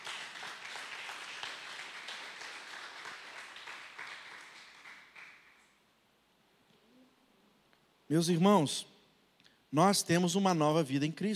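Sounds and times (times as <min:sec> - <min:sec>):
audience applauding during a church sermon: 0:00.0 - 0:05.8
speech: 0:08.1 - 0:08.9, 0:09.7 - 0:11.3.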